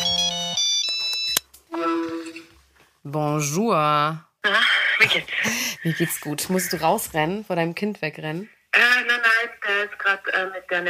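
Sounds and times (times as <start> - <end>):
mobile phone electronic ringtone melody for an incoming call: 0.0 - 1.4
speech: 3.1 - 9.0, 9.8 - 10.8.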